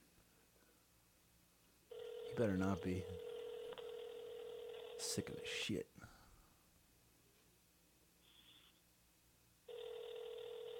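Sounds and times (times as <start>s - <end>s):
ringing tone of an outgoing phone call: 1.9s - 5.3s, 9.7s - 10.7s
speech: 2.4s - 3.3s, 5.1s - 6.2s.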